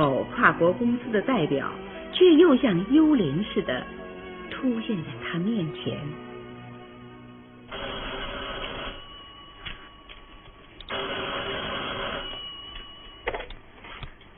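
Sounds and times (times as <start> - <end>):
speech: 0.0 - 4.0, 4.6 - 6.3
telephone ringing in long buzzing bursts: 7.7 - 14.3.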